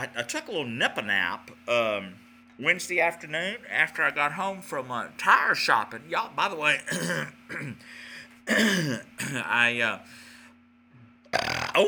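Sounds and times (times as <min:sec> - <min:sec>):
speech: 0:00.0 - 0:10.2, 0:11.3 - 0:11.8
faint steady hum: 0:00.0 - 0:11.8
person burping: 0:06.9 - 0:07.8, 0:08.5 - 0:09.4, 0:11.3 - 0:11.8.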